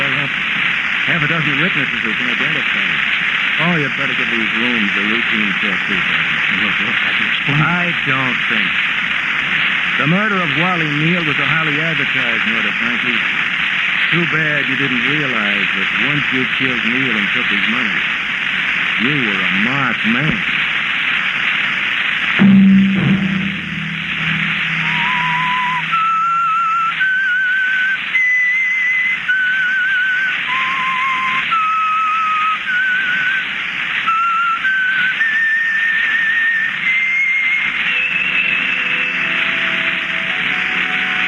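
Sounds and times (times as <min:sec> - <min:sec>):
hiss: 0:00.0 - 0:41.2
speech: 0:01.2 - 0:09.0, 0:10.0 - 0:13.5, 0:14.1 - 0:18.2, 0:19.0 - 0:20.6
whistled melody: 0:24.2 - 0:41.2.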